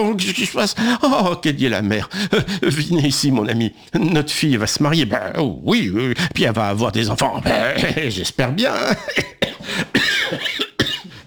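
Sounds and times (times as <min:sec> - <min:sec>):
speech: 0:00.0 - 0:09.4
harsh coughing in a cold cellar: 0:08.8 - 0:11.2.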